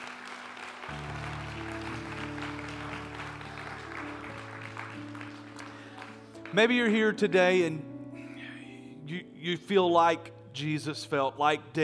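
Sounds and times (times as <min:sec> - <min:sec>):
crowd clapping hands: 0:00.0 - 0:06.9
sustained keyboard or organ chords: 0:00.9 - 0:11.8
speech: 0:06.5 - 0:07.9, 0:09.1 - 0:11.8.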